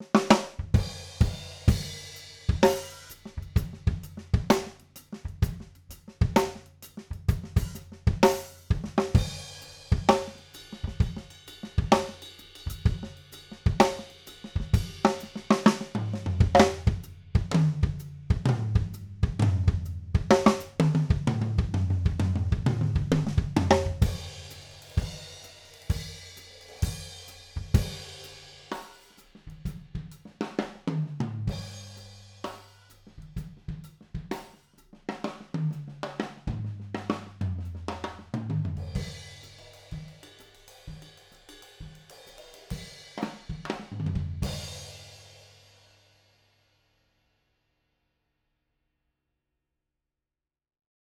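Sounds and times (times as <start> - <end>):
drum kit recorded with spaced figure-8 overhead microphones: 0.0 - 46.2.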